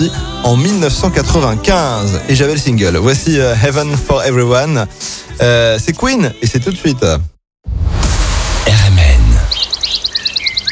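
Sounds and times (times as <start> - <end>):
speech: 0.0 - 7.3
loud rumbling noise: 7.7 - 9.6
quick high-pitched bird chirps: 9.4 - 10.7.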